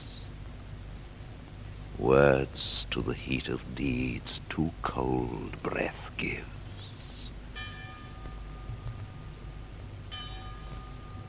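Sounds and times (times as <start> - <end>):
low steady rumble: 0.0 - 11.2
speech: 2.0 - 6.6
bell ringing with a shimmering tone: 7.6 - 9.3, 10.1 - 11.2.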